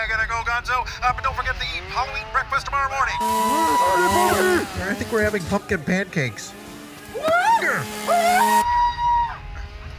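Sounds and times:
speech: 0.0 - 6.6
shrill warbling cartoon-like screams of a pumpkin being carved: 3.2 - 5.0, 7.1 - 9.6.

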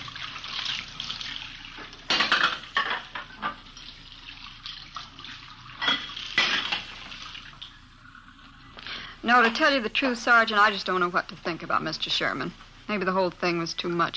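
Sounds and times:
running tap water splashing into a sink: 0.0 - 9.7
crockery clinking: 2.1 - 3.6, 5.8 - 6.9
speech: 9.3 - 14.1.

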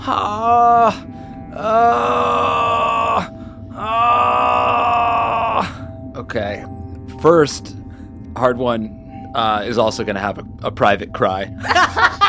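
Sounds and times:
speech: 0.0 - 2.2, 7.2 - 7.8, 8.4 - 12.2
voice moaning: 0.0 - 5.9.

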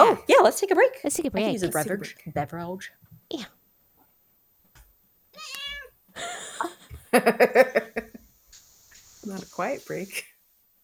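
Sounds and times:
speech: 0.1 - 3.6, 6.2 - 8.1, 9.2 - 10.3
cat meowing: 5.3 - 6.0
laughter: 6.2 - 8.2.

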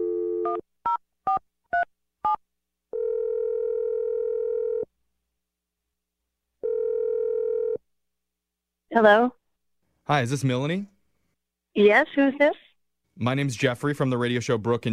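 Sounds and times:
speech: 0.5 - 0.8, 9.0 - 9.4, 10.1 - 10.9, 11.8 - 12.6, 13.2 - 14.9
telephone dial tone: 2.9 - 4.9, 6.6 - 7.8.

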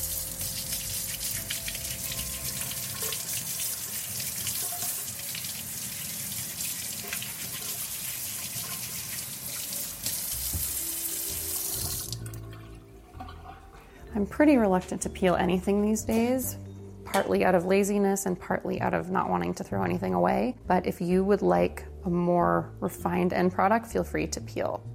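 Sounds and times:
running kitchen tap water: 0.0 - 13.9
speech: 14.2 - 16.6, 17.2 - 24.9.

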